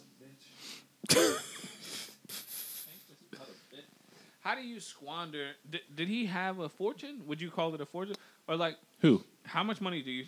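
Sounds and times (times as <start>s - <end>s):
soft laughing breaths: 0.4s - 4.4s
person sniffing while laughing: 0.5s - 0.9s, 1.7s - 4.4s
speech: 4.5s - 10.2s.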